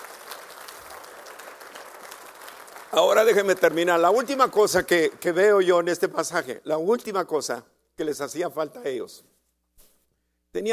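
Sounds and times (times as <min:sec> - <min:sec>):
church congregation applauding during a sermon: 0:00.0 - 0:06.1
speech: 0:02.9 - 0:09.3, 0:10.5 - 0:10.7.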